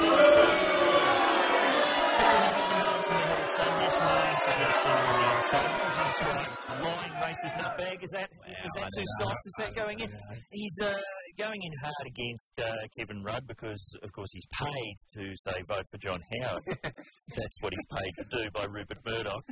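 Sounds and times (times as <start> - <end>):
large crowd booing loudly: 0.0 - 8.0
laughter: 0.0 - 13.8, 14.5 - 19.4
speech: 9.0 - 19.4.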